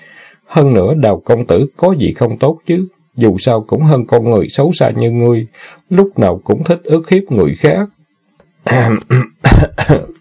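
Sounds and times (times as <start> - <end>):
speech: 0.5 - 8.0, 8.6 - 10.1
person faking a cough and clearing throat: 8.7 - 10.2.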